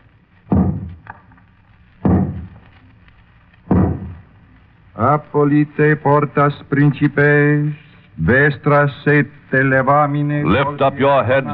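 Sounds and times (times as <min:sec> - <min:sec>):
archbishop's crozier knocking on a large closed carved wooden door during a procession: 0:03.7 - 0:04.2
speech: 0:05.0 - 0:11.5.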